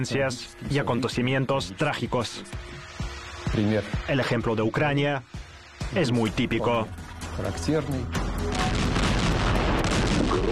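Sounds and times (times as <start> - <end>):
speech: 0.0 - 2.8, 3.5 - 8.6
continuous rumbling roar of artillery guns firing: 8.5 - 10.4
heavy artillery boom: 8.5 - 10.4.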